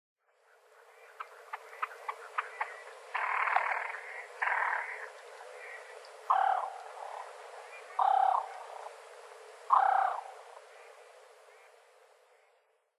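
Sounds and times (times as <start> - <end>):
great crested grebe harsh calls in Aomori, Japan: 0.6 - 9.0, 9.6 - 12.6
great crested grebe ticking notes: 1.0 - 8.9, 9.7 - 11.8.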